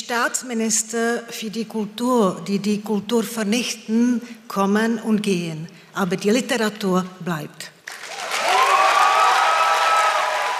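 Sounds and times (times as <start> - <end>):
speech: 0.1 - 7.7
audience applause after a speech: 7.8 - 10.5
crowd cheering after a speech at a festive opening: 7.9 - 10.5.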